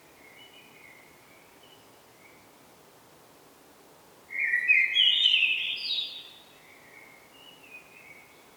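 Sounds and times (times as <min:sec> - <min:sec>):
quiet background hiss: 0:00.0 - 0:08.5
Common blackbird singing a mellow warbled phrase: 0:04.3 - 0:06.4.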